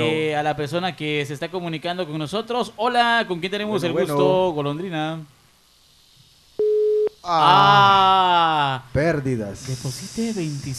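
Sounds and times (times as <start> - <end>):
speech: 0.0 - 5.4, 7.2 - 10.7
telephone busy-line tone: 6.6 - 7.1.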